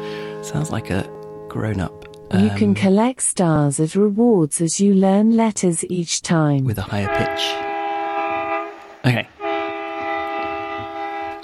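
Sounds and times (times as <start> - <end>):
speech: 0.5 - 7.7, 9.0 - 9.3
choo choo train whistle effect: 7.0 - 11.4.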